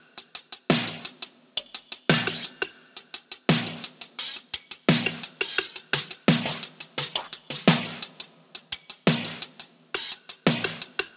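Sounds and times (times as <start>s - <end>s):
synthwave drum loop: 0.0s - 2.6s, 3.2s - 11.1s.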